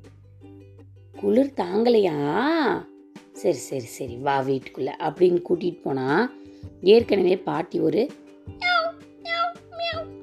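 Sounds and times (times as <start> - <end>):
speech: 1.2 - 8.6
voice imitating cat meows: 8.6 - 10.2.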